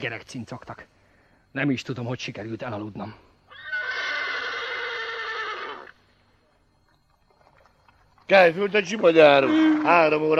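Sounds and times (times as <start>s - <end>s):
speech: 0.0s - 3.3s, 8.3s - 10.3s
horse whinnying at night: 3.5s - 6.0s, 9.3s - 10.2s.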